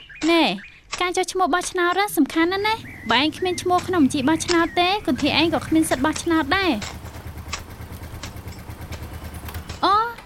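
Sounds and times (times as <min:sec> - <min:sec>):
speech: 0:00.5 - 0:07.0
motorcycle engine rumble: 0:02.4 - 0:10.2.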